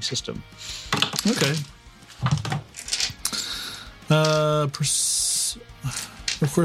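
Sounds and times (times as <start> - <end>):
speech: 0.0 - 2.9, 4.1 - 6.6
percentile dice clattering on a hard surface: 0.9 - 3.2.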